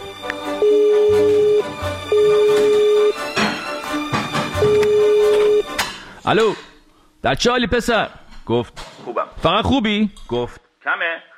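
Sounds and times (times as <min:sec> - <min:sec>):
music: 0:00.0 - 0:06.1
telephone ringback tone while calling: 0:00.5 - 0:03.3, 0:04.6 - 0:05.8
speech: 0:06.3 - 0:11.3.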